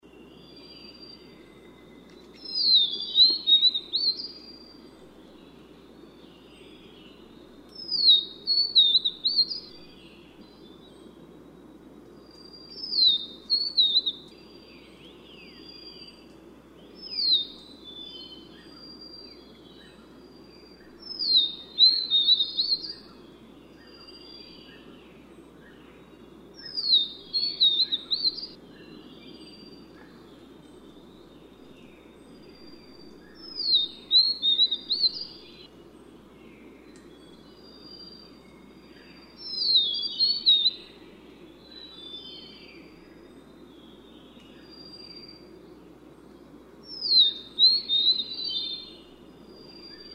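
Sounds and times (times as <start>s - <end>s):
Vivid niltava calling: 0.4s - 4.8s, 6.7s - 10.6s, 12.4s - 14.4s, 20.8s - 24.9s, 26.6s - 30.2s, 33.2s - 35.7s, 36.9s - 45.6s, 46.8s - 50.1s.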